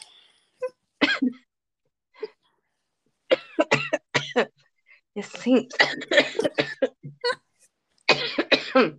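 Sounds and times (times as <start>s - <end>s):
person coughing: 1.0s - 1.4s, 3.3s - 4.5s, 5.7s - 7.4s, 8.1s - 8.9s.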